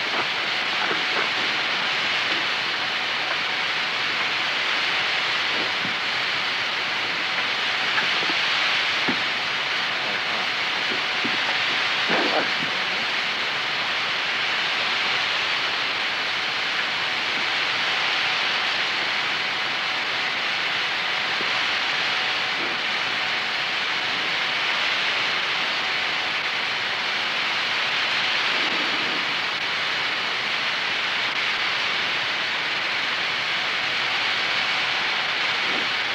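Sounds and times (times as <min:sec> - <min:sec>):
old freight train rumbling along tracks: 0:00.0 - 0:36.1.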